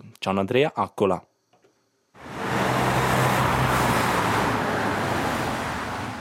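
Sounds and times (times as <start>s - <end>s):
speech: 0.2s - 1.3s
cars braking at a road bottleneck in Mulenz and accelerating: 2.2s - 6.1s
low engine hum of road traffic: 2.2s - 6.1s.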